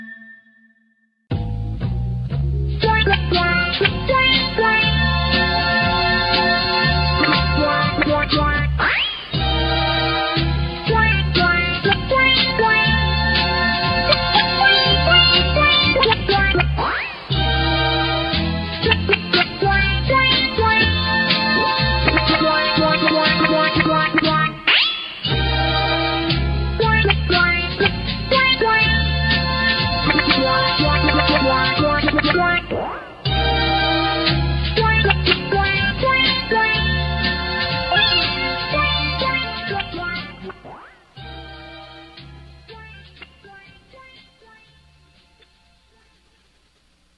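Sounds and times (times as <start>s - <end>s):
instrumental jingle: 1.3s - 24.7s, 25.3s - 46.1s.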